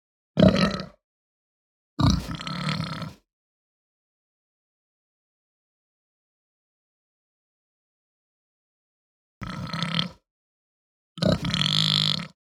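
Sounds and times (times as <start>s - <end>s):
Hampshire pig giving deep guttural grunts: 0.4s - 1.0s, 2.0s - 3.2s, 9.4s - 10.2s, 11.2s - 12.4s.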